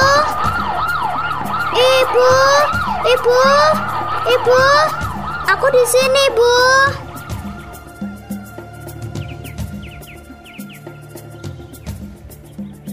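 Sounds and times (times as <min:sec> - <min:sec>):
police patrol car siren wailing as car passes evacuation shelter: 0:00.0 - 0:09.5
bird chirps: 0:00.0 - 0:12.9
speech: 0:03.1 - 0:07.0.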